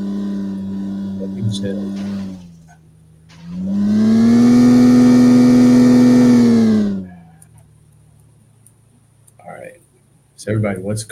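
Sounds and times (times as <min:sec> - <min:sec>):
video game car engine revving during a race: 0:00.0 - 0:07.5
speech: 0:01.4 - 0:02.3, 0:10.5 - 0:11.1.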